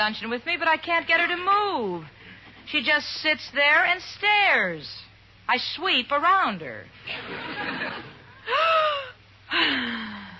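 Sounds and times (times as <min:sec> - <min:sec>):
speech: 0:00.0 - 0:10.1
laughter: 0:07.1 - 0:09.0
loud deep breathing exercise inhales and exhales: 0:08.4 - 0:10.3.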